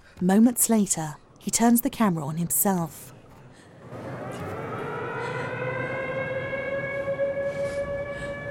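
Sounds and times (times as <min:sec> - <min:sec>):
speech: 0:00.2 - 0:03.1
sirens wailing: 0:03.9 - 0:08.5.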